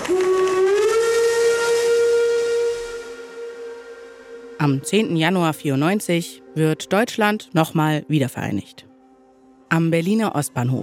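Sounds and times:
train whistle as a train arrives at a platform: 0.0 - 4.9
speech: 4.6 - 8.9, 9.7 - 10.8.

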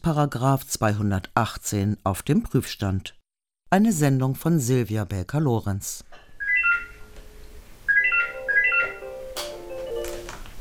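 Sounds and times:
speech: 0.0 - 6.1
telephone ringing at a church telephone counselling service in Berlin: 6.4 - 7.1, 7.9 - 10.4.

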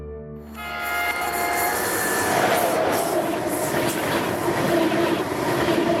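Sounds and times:
ICE high-speed train passing: 0.4 - 5.9
ICE high-speed train wheels squealing: 0.6 - 3.8.

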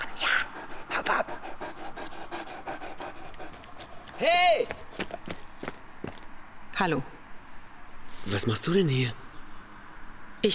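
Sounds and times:
dog panting: 0.0 - 5.4
speech: 4.2 - 4.8, 6.8 - 7.2, 8.3 - 9.2.

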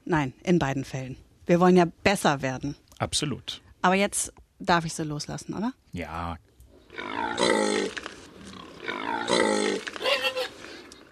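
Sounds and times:
speech: 0.1 - 8.0
wild boar grunting and roaring: 6.9 - 10.8.

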